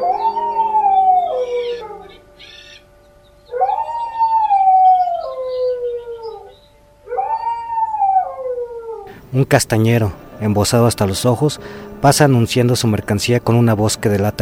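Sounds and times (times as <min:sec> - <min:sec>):
dog at the neighbouring dwelling howling mournfully: 0:00.0 - 0:09.1
speech: 0:09.4 - 0:14.4.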